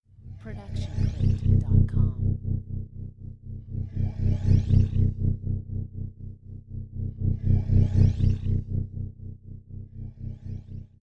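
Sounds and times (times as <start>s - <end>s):
science fiction machinery: 0.3s - 2.4s, 3.7s - 5.2s, 7.1s - 8.7s.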